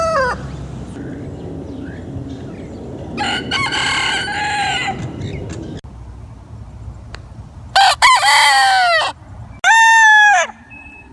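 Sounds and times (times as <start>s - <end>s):
Gallus gallus domesticus rooster crowing: 3.2s - 5.4s, 7.8s - 10.6s.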